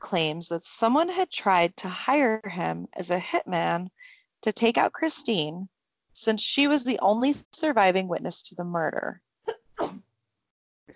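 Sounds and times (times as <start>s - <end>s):
speech: 0.1s - 9.3s
sneeze: 9.5s - 10.0s.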